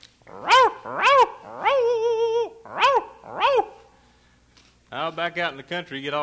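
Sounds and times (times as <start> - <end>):
dog barking: 0.3 - 3.9
speech: 5.2 - 6.2.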